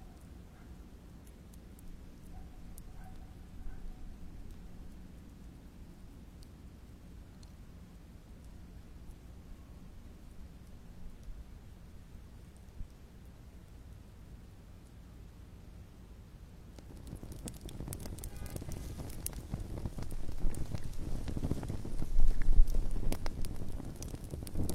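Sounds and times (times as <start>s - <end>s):
calm campfire at night crackling: 0.0s - 24.7s.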